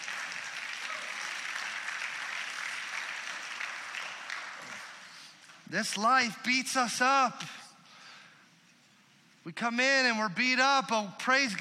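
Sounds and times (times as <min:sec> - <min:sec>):
audience applause: 0:00.0 - 0:05.7
speech: 0:05.7 - 0:07.6, 0:09.6 - 0:11.5.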